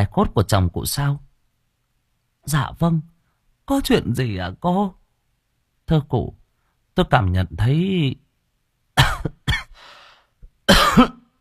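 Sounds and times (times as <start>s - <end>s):
speech: 0.0s - 1.2s, 2.4s - 3.1s, 3.7s - 5.0s, 5.9s - 6.4s, 7.0s - 8.2s, 9.0s - 9.4s, 10.7s - 11.2s
woman coughing softly: 9.0s - 9.8s, 10.7s - 11.3s.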